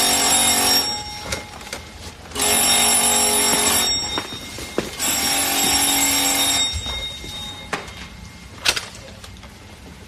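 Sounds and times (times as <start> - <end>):
old telephone bell ringing loudly in a 1939 hotel room: 0.0 - 1.7, 2.4 - 8.0.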